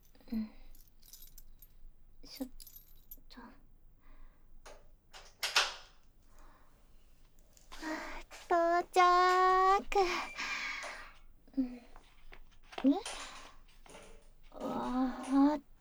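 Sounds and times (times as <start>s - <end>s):
keys jingling: 0.0s - 3.3s, 7.5s - 11.2s, 12.1s - 15.6s
speech: 0.3s - 0.6s, 2.4s - 2.6s, 10.0s - 10.4s.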